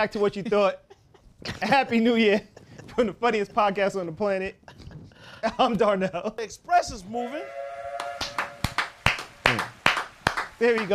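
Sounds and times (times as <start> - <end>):
speech: 0.0 - 0.8, 1.4 - 4.8, 5.4 - 7.6, 10.6 - 10.9
hands clapping: 8.0 - 10.9.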